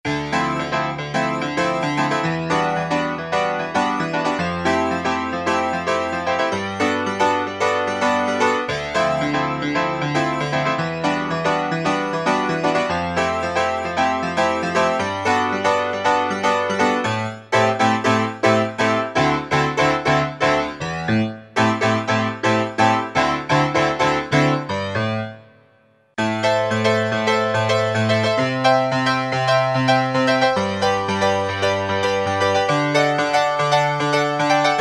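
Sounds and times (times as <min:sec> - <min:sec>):
Brite Piano keyboard patch on an E-mu Proteus FX: 0:00.0 - 0:34.8.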